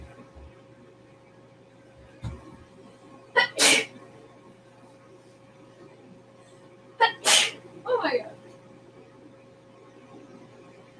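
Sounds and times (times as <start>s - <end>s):
person sneezing: 3.4s - 3.9s, 7.0s - 7.6s.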